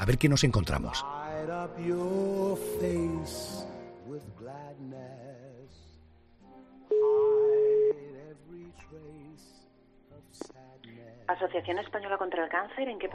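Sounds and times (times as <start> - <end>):
speech: 0.0 - 5.2, 11.3 - 13.1
telephone ringing tone while a call connects: 6.9 - 8.1.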